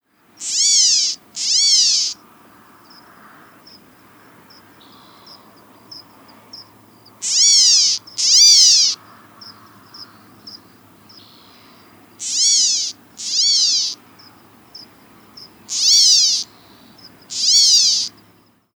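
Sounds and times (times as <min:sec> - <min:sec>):
California gnatcatcher doubled mew calls: 0:00.4 - 0:02.2, 0:07.2 - 0:09.0, 0:12.2 - 0:14.0, 0:15.7 - 0:16.6, 0:17.3 - 0:18.2.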